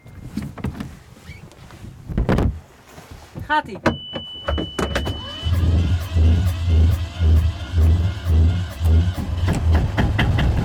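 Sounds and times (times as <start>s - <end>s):
speech: 3.5s - 4.9s
boat engine starter cord tugs, pull-started from cold with throttle fairly high: 4.0s - 10.6s.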